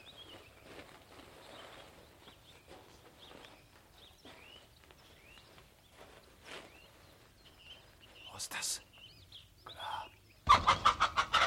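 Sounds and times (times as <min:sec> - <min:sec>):
speech: 0:08.4 - 0:08.9
hen clucking: 0:10.4 - 0:11.4.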